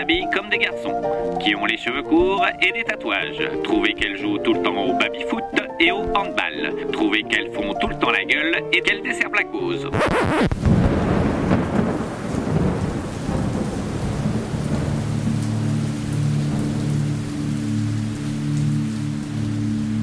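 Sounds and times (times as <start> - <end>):
steady rain hissing: 0.0 - 2.6, 9.9 - 20.0
speech: 0.0 - 10.8
thunder rumbling: 10.4 - 18.0.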